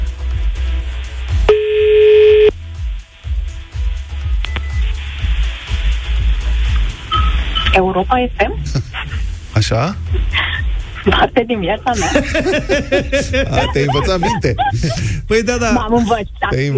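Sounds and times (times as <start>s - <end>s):
rhythmic music: 0.0s - 16.7s
telephone ringing: 1.5s - 2.5s
speech: 7.9s - 9.0s, 9.6s - 16.7s
laughter: 8.6s - 16.7s.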